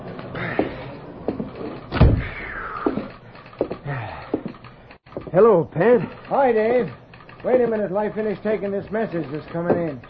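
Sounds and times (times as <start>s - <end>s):
heavy footsteps stomping on a hollow wooden floor of a freight car: 0.4s - 1.8s, 2.8s - 5.3s
loud bang: 1.9s - 2.7s
speech: 5.4s - 10.0s.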